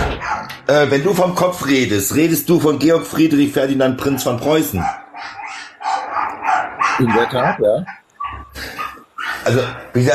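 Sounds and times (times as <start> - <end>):
several dogs barking outside: 0.0 - 0.6, 3.9 - 9.9
speech: 0.7 - 5.0, 7.0 - 8.0, 9.5 - 10.1.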